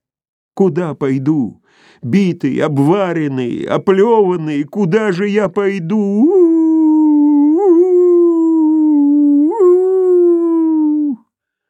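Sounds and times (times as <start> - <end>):
speech: 0.6 - 6.5
dog howling: 6.2 - 11.2.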